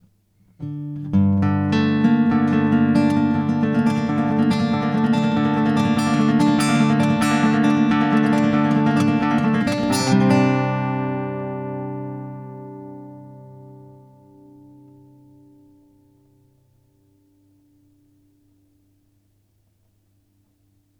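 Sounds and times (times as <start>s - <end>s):
flamenco guitar: 0.0s - 17.6s.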